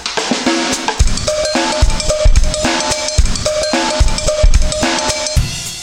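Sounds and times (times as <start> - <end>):
indie pop music: 0.3 - 5.7.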